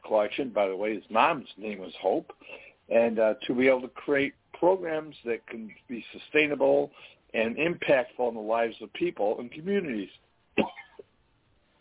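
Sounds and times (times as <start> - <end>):
speech: 0.1 - 10.8
throat clearing from a dry throat: 10.6 - 11.0.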